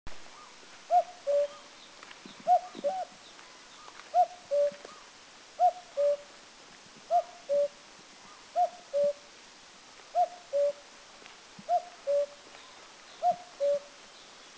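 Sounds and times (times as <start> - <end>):
Eurasian cuckoo calling in Mishmi India: 0.3 - 6.3, 7.1 - 9.3, 10.1 - 10.8, 11.7 - 14.0.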